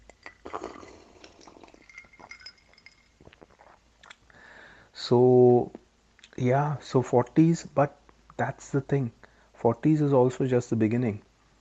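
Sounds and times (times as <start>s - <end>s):
glass clinking: 0.0s - 3.8s
slurping and swallowing: 0.0s - 4.2s
person taking a big sip of beer: 0.0s - 4.3s
speech: 5.1s - 5.8s, 6.4s - 11.3s.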